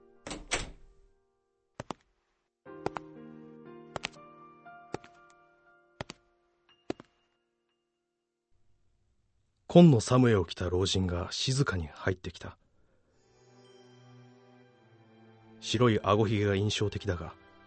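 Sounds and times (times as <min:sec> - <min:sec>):
door opening: 0:00.1 - 0:01.1
doorknob turning: 0:00.2 - 0:01.0
speech: 0:09.7 - 0:12.6, 0:15.6 - 0:17.4.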